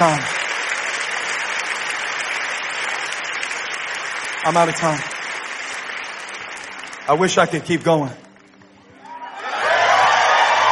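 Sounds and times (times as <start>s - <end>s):
speech: 0.0s - 0.3s, 4.4s - 5.1s, 7.1s - 8.2s
standing church audience clapping hands in praise: 0.0s - 10.7s.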